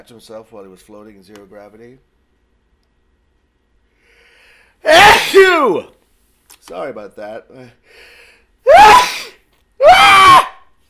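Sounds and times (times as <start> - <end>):
speech: 0.0 - 2.1, 4.9 - 6.0, 6.7 - 8.2
loud shrill sneezes: 4.8 - 5.9, 8.7 - 10.6.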